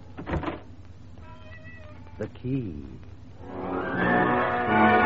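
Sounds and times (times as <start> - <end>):
door swinging shut with a soft thud and rattle: 0.2 - 0.7
speech: 2.2 - 4.9.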